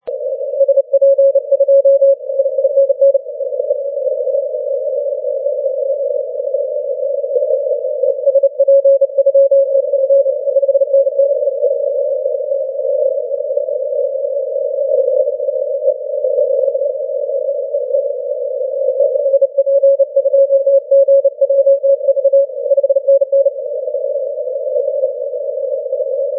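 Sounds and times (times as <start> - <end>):
40m band CW morse code radio signal: 0.0 - 26.3.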